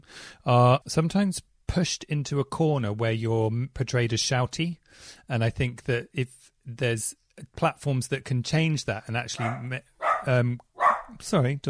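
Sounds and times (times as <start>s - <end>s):
speech: 0.0s - 11.6s
dog barking: 9.4s - 11.2s.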